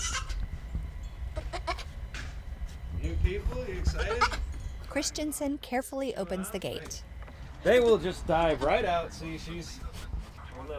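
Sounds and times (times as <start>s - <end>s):
two tiny young goats bleating while hopping around a backyard: 0.0s - 0.4s, 1.4s - 2.0s, 3.7s - 4.5s
speech: 3.0s - 9.9s.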